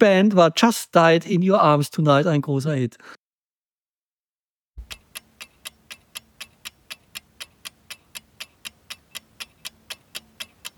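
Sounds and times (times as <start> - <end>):
speech: 0.0 - 3.2
clock ticking counting down during a quiz question: 4.8 - 10.7.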